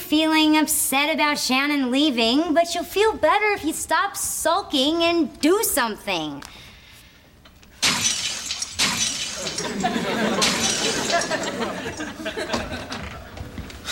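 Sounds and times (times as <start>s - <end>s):
speech: 0.1s - 6.6s, 9.6s - 12.9s
porcelain cat figurines smashing: 7.8s - 12.1s
porcelain shards tinkling and clattering: 7.8s - 12.1s
laughter: 9.4s - 13.4s.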